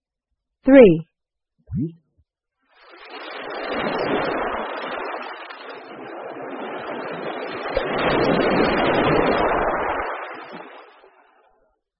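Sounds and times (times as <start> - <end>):
speech: 0.6 - 1.1, 1.7 - 2.0
brief voice: 0.7 - 1.0
ocean waves rolling in: 2.7 - 11.4.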